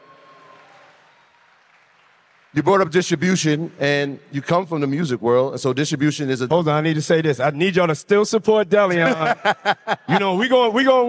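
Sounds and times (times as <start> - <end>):
audience applause with dense overlapping clapping: 0.0 - 3.9
speech: 2.5 - 11.0
laughter: 8.9 - 10.5.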